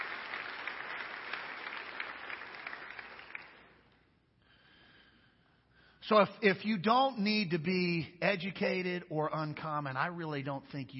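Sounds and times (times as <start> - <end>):
audience clapping in praise: 0.0 - 4.0
speech: 6.1 - 10.9.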